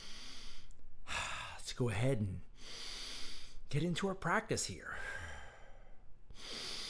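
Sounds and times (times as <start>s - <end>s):
deep breathing in through the nose and out through the mouth: 0.0s - 1.6s, 2.6s - 3.7s, 4.9s - 6.8s
speech: 1.8s - 2.5s, 3.7s - 5.2s.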